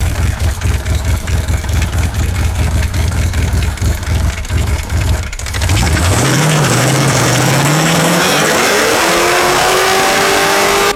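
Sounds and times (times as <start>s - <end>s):
rough car engine idling and accelerating: 0.0s - 10.9s.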